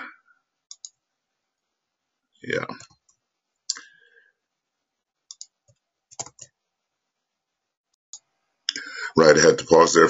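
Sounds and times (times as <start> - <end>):
slow clumsy typing on a computer keyboard: 0.7 - 1.0, 5.3 - 6.6
speech: 2.4 - 3.0, 9.2 - 10.0.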